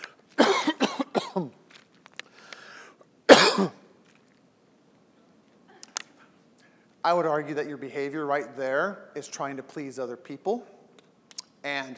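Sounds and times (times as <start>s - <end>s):
person coughing harshly: 0.4s - 1.6s, 3.3s - 3.8s
speech: 7.1s - 10.8s, 11.6s - 11.9s.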